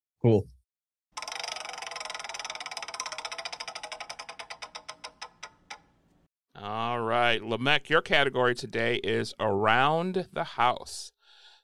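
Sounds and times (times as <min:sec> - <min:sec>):
speech: 0:00.2 - 0:00.6, 0:07.4 - 0:11.2
prize wheel spinning and ticking in a quiz game: 0:01.2 - 0:06.0.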